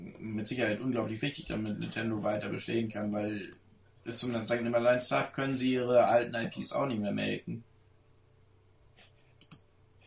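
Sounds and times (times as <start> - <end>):
low steady hum: 0.0 - 10.0
speech: 0.4 - 7.7
computer mouse clicking: 3.0 - 3.6, 9.0 - 10.0.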